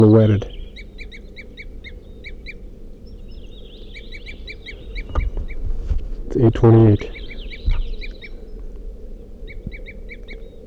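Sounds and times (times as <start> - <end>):
speech: 0.0 - 0.6, 6.3 - 7.2
crossbill toop calls at the edge of a clearing: 0.0 - 10.6
dull knocks: 4.3 - 8.9.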